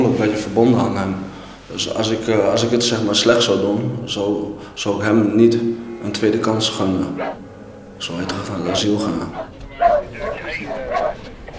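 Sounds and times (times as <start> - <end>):
speech: 0.2 - 7.4, 8.0 - 10.8
dog barking short sharp woofs: 7.2 - 7.4, 8.6 - 11.2.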